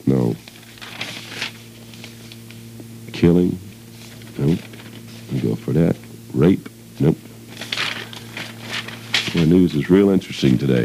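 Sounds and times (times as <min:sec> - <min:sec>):
speech: 0:00.0 - 0:00.5, 0:03.2 - 0:03.6, 0:04.4 - 0:04.7, 0:05.4 - 0:07.3, 0:09.5 - 0:10.8
faint steady hum: 0:00.0 - 0:10.8
papers being shuffled: 0:00.4 - 0:02.7, 0:03.8 - 0:05.6, 0:07.4 - 0:10.8.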